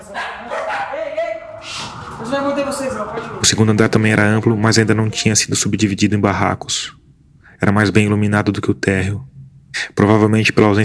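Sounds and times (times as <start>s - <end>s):
two poodles barking and yelping: 0.0s - 1.6s
speech: 2.2s - 7.0s, 7.6s - 10.8s.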